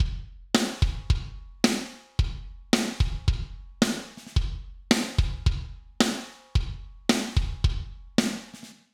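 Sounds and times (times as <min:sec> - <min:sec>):
kick drum: 0:00.0 - 0:01.6, 0:02.2 - 0:03.8, 0:04.4 - 0:05.9, 0:06.5 - 0:08.2
snare drum: 0:00.0 - 0:02.2, 0:02.8 - 0:08.9.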